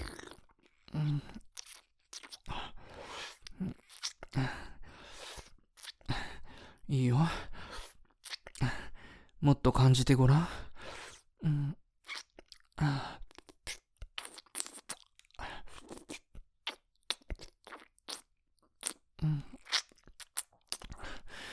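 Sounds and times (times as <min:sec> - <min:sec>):
crunching and chewing of chestnuts: 0:00.0 - 0:02.5, 0:03.1 - 0:04.4, 0:05.4 - 0:06.1, 0:07.8 - 0:08.6, 0:12.0 - 0:21.0
speech: 0:06.9 - 0:07.5, 0:09.4 - 0:10.6.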